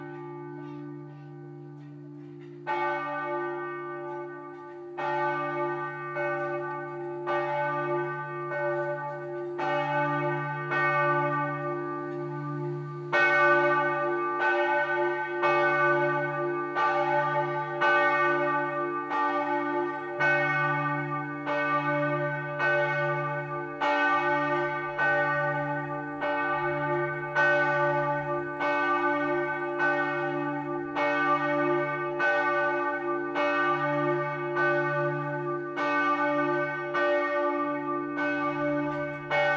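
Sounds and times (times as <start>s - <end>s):
large single bell of a pilgrimage church on a hilltop ringing: 0.0s - 39.5s.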